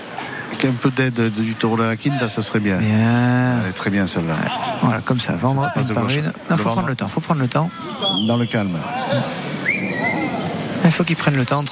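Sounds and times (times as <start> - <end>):
crowd murmur and talking in a bullring during a bullfight: 0.0 - 11.7
speech: 0.6 - 9.4, 10.8 - 11.7
spectator whistling in a bullring during a bullfight: 8.0 - 8.7, 9.6 - 10.4.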